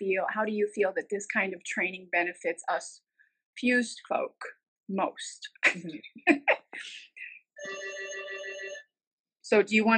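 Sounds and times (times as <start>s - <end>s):
speech: 0.1s - 8.2s, 9.5s - 9.9s
telephone ringing with a steady electronic trill: 7.6s - 9.0s.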